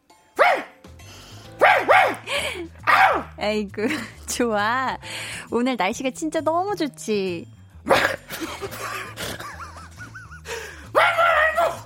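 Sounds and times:
small dog yapping: 0:00.4 - 0:00.8, 0:01.6 - 0:02.3, 0:02.9 - 0:03.3, 0:11.0 - 0:11.8
speech: 0:03.4 - 0:08.8
laughter: 0:08.3 - 0:10.8.

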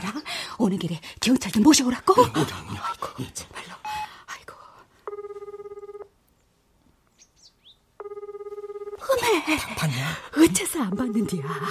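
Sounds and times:
speech: 0:00.0 - 0:03.8, 0:09.5 - 0:11.6
telephone ringing unanswered: 0:03.8 - 0:04.1, 0:05.0 - 0:06.1, 0:08.0 - 0:09.5, 0:10.4 - 0:11.6
faint bird chirps: 0:06.3 - 0:07.9.

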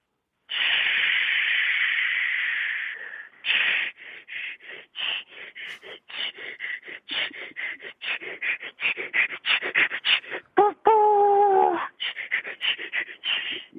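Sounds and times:
voice imitating a steam locomotive slowly departing: 0:00.5 - 0:04.0, 0:07.1 - 0:13.7.

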